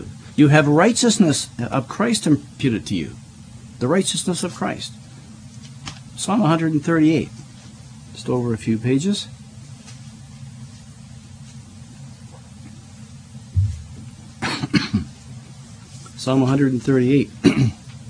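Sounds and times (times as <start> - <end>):
low steady hum: 0.0 - 18.0
speech: 0.4 - 3.2, 3.8 - 5.0, 6.2 - 7.4, 8.2 - 9.4, 16.3 - 17.8
man clearing throat: 14.4 - 15.2, 17.4 - 17.9
man coughing: 14.4 - 15.2, 17.4 - 17.8.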